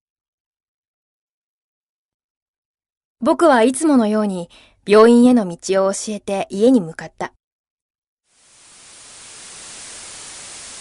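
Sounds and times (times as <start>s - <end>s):
speech: 3.2s - 7.4s
television static hiss: 8.3s - 10.7s.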